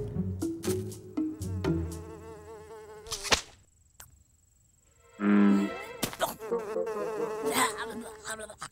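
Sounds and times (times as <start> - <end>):
fly buzzing: 0.5 - 3.7, 4.8 - 8.6.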